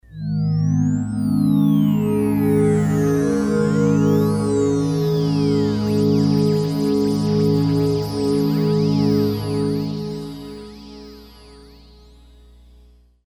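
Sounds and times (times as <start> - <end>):
Nyquist synth pad: 0.2 - 12.2.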